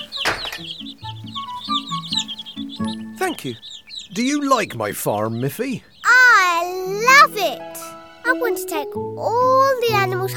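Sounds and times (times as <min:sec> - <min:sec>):
farm chicks clucking and peeping: 0:00.0 - 0:10.3
speech: 0:00.6 - 0:01.4, 0:03.2 - 0:05.9, 0:08.4 - 0:10.3.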